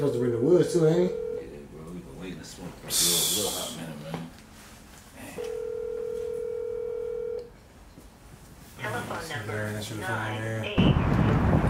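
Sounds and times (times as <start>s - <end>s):
speech: 0.0s - 1.2s, 2.4s - 4.2s, 9.2s - 11.5s
phone ringback tone of a call to a friend: 0.6s - 1.5s, 5.4s - 7.4s.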